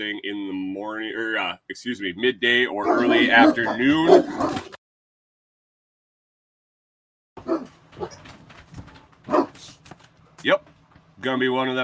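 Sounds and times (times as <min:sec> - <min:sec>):
speech: 0:00.0 - 0:04.6, 0:11.3 - 0:11.8
dogs barking: 0:02.8 - 0:04.7, 0:07.4 - 0:08.3, 0:09.2 - 0:09.7
scuffling noise: 0:07.5 - 0:10.7.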